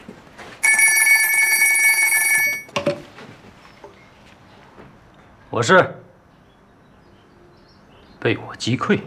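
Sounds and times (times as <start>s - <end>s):
old-fashioned telephone bell ringing: 0.6s - 2.7s
speech: 5.6s - 6.0s, 8.3s - 9.0s.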